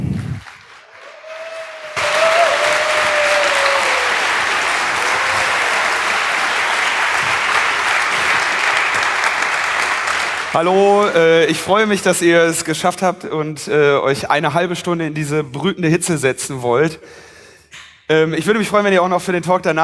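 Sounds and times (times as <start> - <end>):
audience applause welcoming a speaker to the stage: 0.0 - 11.4
speech: 10.6 - 19.8.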